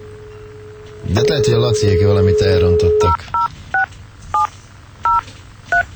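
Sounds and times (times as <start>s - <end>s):
low steady hum: 0.0s - 5.9s
speech: 1.0s - 3.4s
dual-tone telephone keypad beeps as a number is dialed: 1.0s - 4.5s, 5.1s - 5.9s.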